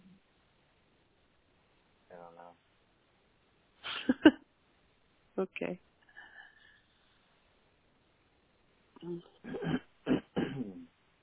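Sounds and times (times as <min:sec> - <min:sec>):
speech: 0:05.4 - 0:05.9, 0:09.0 - 0:09.8
person coughing harshly: 0:09.4 - 0:10.8.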